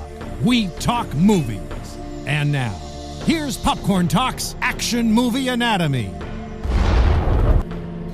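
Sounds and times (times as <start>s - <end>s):
speech: 0.4s - 6.3s
roaring explosion sound effect: 6.6s - 7.6s
sharp blast: 6.6s - 7.6s.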